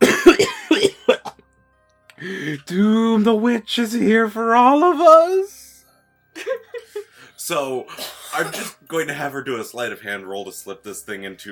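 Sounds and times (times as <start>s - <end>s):
man's voice acting out harsh hacking coughs: 0.0s - 1.4s, 7.9s - 9.0s
speech: 2.7s - 5.6s, 6.4s - 11.5s
laughter: 6.4s - 7.3s.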